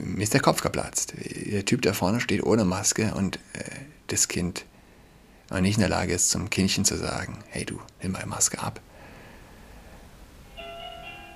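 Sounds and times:
speech: 0.2s - 4.7s, 5.5s - 8.9s
doorbell chiming: 10.5s - 11.3s.

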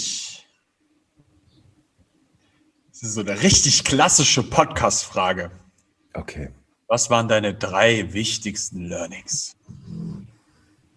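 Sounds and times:
speech: 3.0s - 5.6s, 6.2s - 9.6s
pet dog snoring while lying down: 9.7s - 10.4s.

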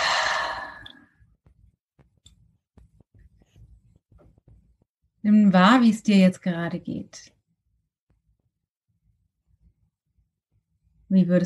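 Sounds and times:
deep exhale during breathing exercise: 0.0s - 1.0s
soft taps and rustles: 1.4s - 4.9s
speech: 5.2s - 7.4s, 11.1s - 11.4s.

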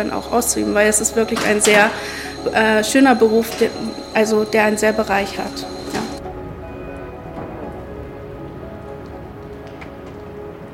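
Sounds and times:
speech: 0.0s - 6.0s
heavy rain pattering on hard surfaces outside a hospital emergency department: 6.2s - 10.7s.

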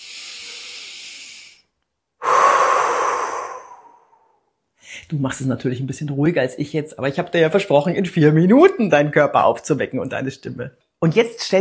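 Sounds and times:
person exhaling through mouth in a deep breathing exercise: 0.0s - 4.5s
person inhaling deeply in a breathing exercise: 0.0s - 4.5s
speech: 5.1s - 11.5s.

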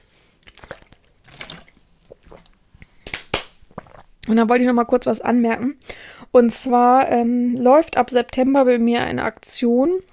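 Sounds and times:
sipping and swallowing water: 0.4s - 4.3s
speech: 4.3s - 10.1s.

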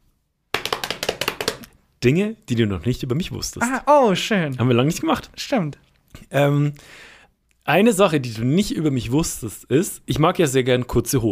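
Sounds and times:
hands slapping thighs in a drumroll: 0.5s - 1.8s
speech: 2.0s - 7.1s, 7.7s - 11.3s.

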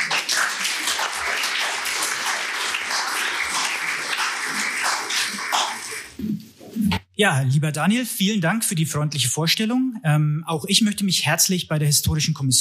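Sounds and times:
audience applause: 0.0s - 6.2s
speech: 7.2s - 12.6s.

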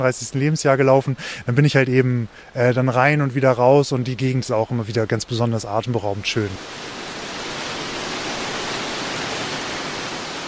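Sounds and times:
speech: 0.0s - 7.0s
waterfall roaring, heard from a bridge: 5.3s - 10.4s.

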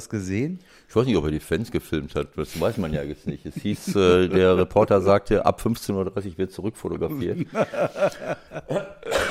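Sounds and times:
speech: 0.0s - 9.3s
laughter: 2.5s - 5.0s, 7.1s - 9.3s
harsh raspy coughs: 8.7s - 9.3s.

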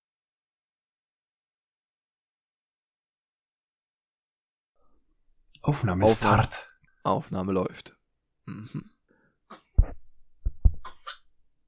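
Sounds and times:
speech: 5.6s - 8.9s
person sneezing: 10.8s - 11.3s.

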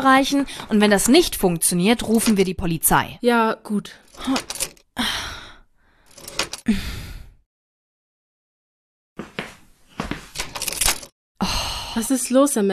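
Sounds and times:
speech: 0.0s - 5.2s, 12.0s - 12.7s
key jangling and scraping in a lock it does not fit: 4.0s - 4.8s, 6.1s - 6.7s, 10.3s - 11.1s.

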